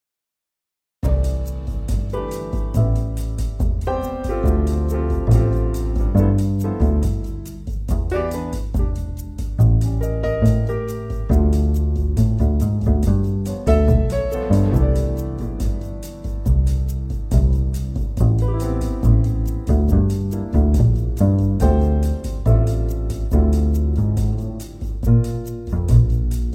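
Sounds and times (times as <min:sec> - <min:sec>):
background music: 0:01.0 - 0:26.5.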